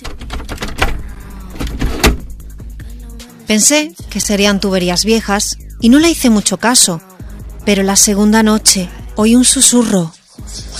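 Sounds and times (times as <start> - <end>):
knocking behind a door in a lake house at night: 0.0 - 2.5
speech: 3.5 - 10.7.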